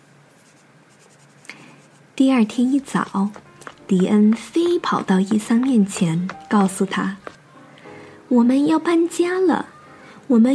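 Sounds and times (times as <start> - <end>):
pen scratching on paper: 0.4 - 7.4
speech: 2.2 - 7.4, 8.3 - 9.7, 10.3 - 10.5.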